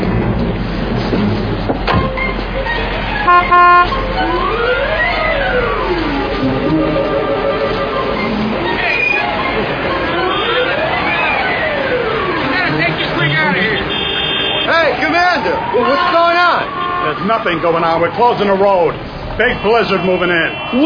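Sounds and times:
traffic noise: 0.0 - 20.8
car horn blaring: 3.2 - 4.2, 10.1 - 11.0, 12.8 - 14.9, 19.4 - 20.8
rising and falling wailing tones: 3.2 - 13.2
speech: 17.4 - 20.8.

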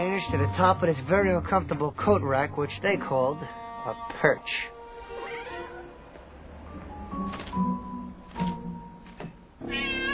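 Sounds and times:
speech: 0.2 - 4.7
cat meowing with drawn-out wavering cries: 5.0 - 5.9, 9.6 - 10.1.

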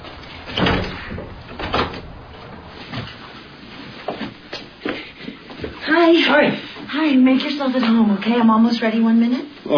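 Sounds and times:
door opening as visitor enters: 0.0 - 3.4
speech: 6.2 - 9.7.

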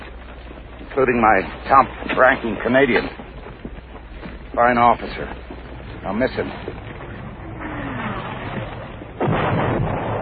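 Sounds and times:
speech: 1.0 - 3.2, 4.6 - 5.4, 6.1 - 6.9
artillery fire in a wartime battle: 7.6 - 10.1.

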